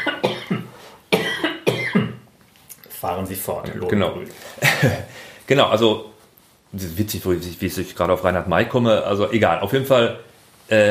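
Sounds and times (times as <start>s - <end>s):
person coughing: 0.0s - 2.2s, 4.6s - 5.1s
speech: 3.0s - 6.1s, 6.7s - 10.8s.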